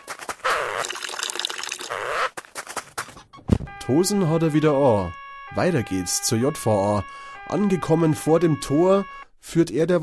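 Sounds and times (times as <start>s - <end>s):
trickles and drips of urine: 0.4s - 2.0s
police officer urinating, liquid stream splashing: 0.5s - 1.9s
speech: 3.9s - 10.0s.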